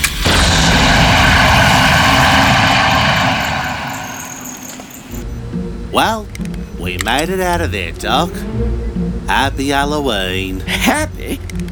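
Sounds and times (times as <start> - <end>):
jet aircraft engine roaring on takeoff: 0.0 - 6.8
speech: 6.0 - 11.6.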